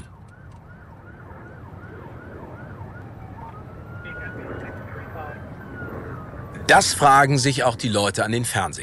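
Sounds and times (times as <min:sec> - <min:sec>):
sirens of more than a dozen police cars following a white car: 0:00.0 - 0:08.8
steady roar of traffic: 0:00.0 - 0:08.8
speech: 0:06.7 - 0:08.8.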